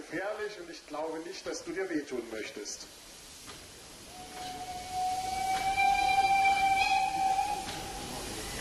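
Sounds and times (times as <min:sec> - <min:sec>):
speech: 0:00.0 - 0:03.6
broad hiss of steam from a class 03 steam locomotive: 0:00.0 - 0:08.5
class 03 steam locomotive whistle while shunting onto the coal track: 0:04.1 - 0:08.5.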